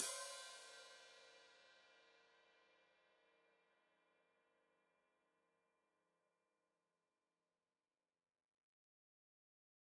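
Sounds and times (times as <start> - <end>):
foot-operated open hi-hat cymbals: 0.0 - 1.0.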